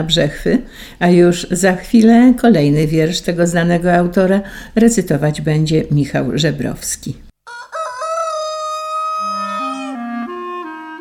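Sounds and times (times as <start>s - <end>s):
speech: 0.0s - 7.2s
rooster crowing: 7.5s - 10.4s.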